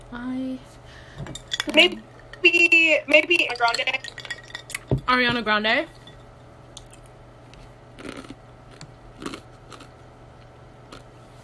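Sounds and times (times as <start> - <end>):
speech: 0.1 - 4.2, 5.1 - 6.0
ice being chewed: 6.8 - 11.1.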